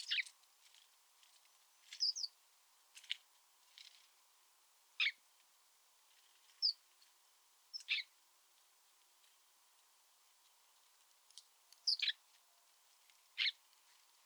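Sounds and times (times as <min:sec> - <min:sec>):
house sparrow chirping: 0:00.0 - 0:00.3, 0:02.0 - 0:02.3, 0:07.7 - 0:08.1, 0:11.8 - 0:12.2.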